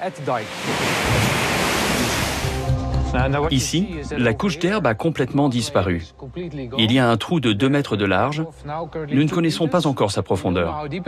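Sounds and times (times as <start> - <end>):
speech: 0.0 - 1.4, 3.1 - 11.0
artificial storm waves crashing against a dike: 0.0 - 2.9.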